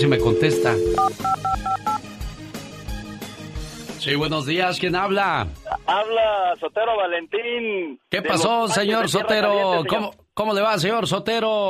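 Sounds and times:
speech: 0.0s - 1.8s, 4.0s - 11.6s
telephone touch-tone dialing beeps: 0.0s - 2.0s.

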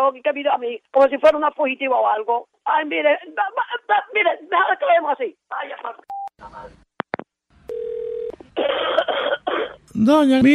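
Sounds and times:
speech: 0.0s - 6.8s, 8.6s - 10.5s
steady telephone tones: 7.7s - 8.4s
woman coughing in harsh noisy bursts: 8.6s - 9.8s.

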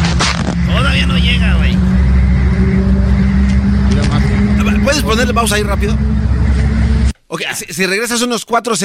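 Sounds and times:
car engine rumbling loudly and steadily: 0.0s - 7.2s
faint indistinct voices: 0.6s - 7.1s
speech: 5.0s - 6.1s, 7.3s - 8.8s.

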